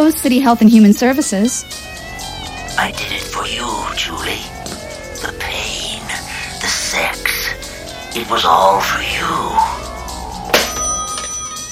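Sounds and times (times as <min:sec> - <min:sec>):
speech: 0:00.1 - 0:02.0, 0:02.8 - 0:04.5, 0:08.2 - 0:09.8
telephone bell ringing: 0:10.0 - 0:11.7.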